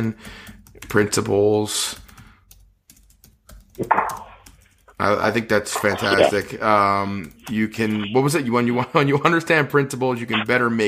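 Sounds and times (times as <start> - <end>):
speech: 0.0 - 2.0, 3.8 - 4.2, 5.0 - 10.8
typing on a computer keyboard: 0.0 - 5.0.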